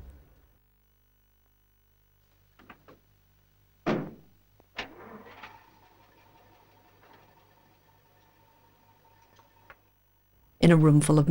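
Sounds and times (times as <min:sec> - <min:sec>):
loud door-like slam: 0:03.8 - 0:05.8
clunks: 0:03.9 - 0:09.9
speech: 0:10.6 - 0:11.2.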